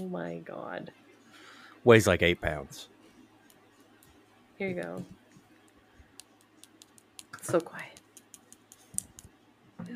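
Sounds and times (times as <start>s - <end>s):
speech: 0.0s - 1.1s, 1.8s - 2.9s, 4.6s - 5.2s, 7.4s - 7.9s, 9.8s - 9.9s
small keyboard clicking: 6.1s - 9.4s.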